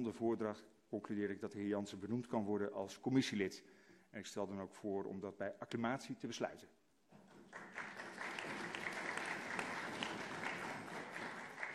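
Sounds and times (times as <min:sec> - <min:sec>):
speech: 0:00.0 - 0:06.8
council members applauding: 0:07.2 - 0:11.7.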